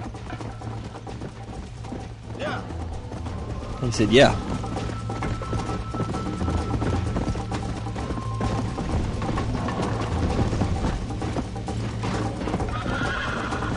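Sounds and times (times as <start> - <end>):
horse hooves clip-clopping in a video game: 0.0 - 13.7
speech: 3.8 - 4.7
horse neighing in a video game: 12.6 - 13.7.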